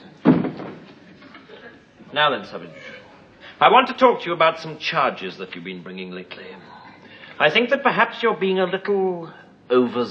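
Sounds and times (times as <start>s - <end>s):
door thudding shut: 0.2s - 0.8s
speech: 2.1s - 3.0s, 3.6s - 6.8s, 7.4s - 10.0s.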